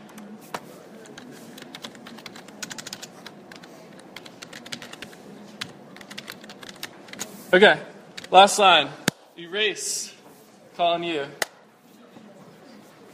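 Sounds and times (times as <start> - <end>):
typing code on a computer keyboard: 1.0 - 7.3
speech: 7.5 - 10.1, 10.8 - 11.4.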